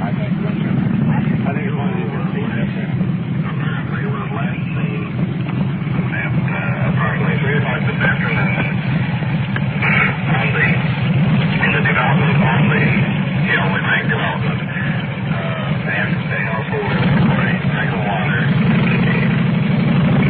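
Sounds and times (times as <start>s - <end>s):
people talking: 0.0s - 9.0s, 9.8s - 19.4s
motor engine running with a low rumbling drone: 0.0s - 20.2s.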